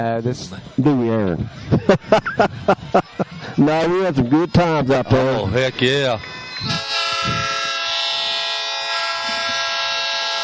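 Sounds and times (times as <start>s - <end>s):
speech: 0.0s - 6.8s
laughter: 1.4s - 6.4s, 9.2s - 9.8s
loud sustained train horn blowing: 6.2s - 10.4s.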